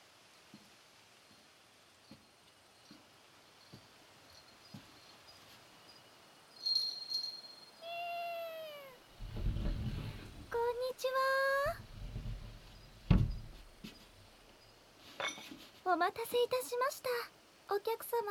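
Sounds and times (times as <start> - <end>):
Singapura cat meowing: 7.8 - 9.1
low rumbling handling noise: 9.1 - 15.8
speech: 15.9 - 18.3.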